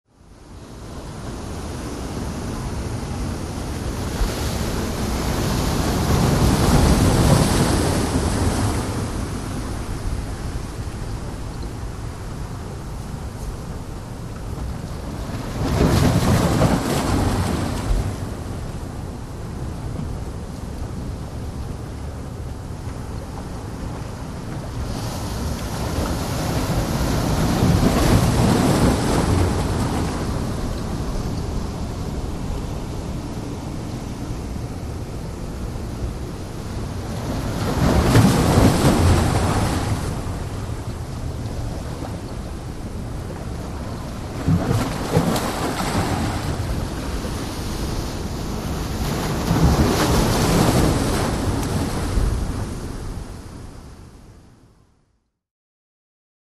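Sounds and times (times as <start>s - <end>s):
close heavy ocean surf: 0.2s - 54.2s.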